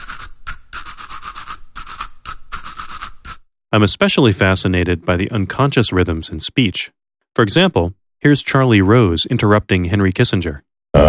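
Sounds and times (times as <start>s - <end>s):
toothbrush scrubbing back and forth: 0.0s - 3.4s
speech: 3.8s - 11.0s.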